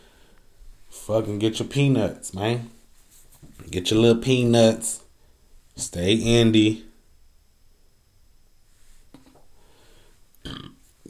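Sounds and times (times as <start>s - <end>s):
speech: 1.1s - 2.8s, 3.6s - 5.0s, 5.8s - 6.9s
short throaty burp: 10.4s - 10.8s.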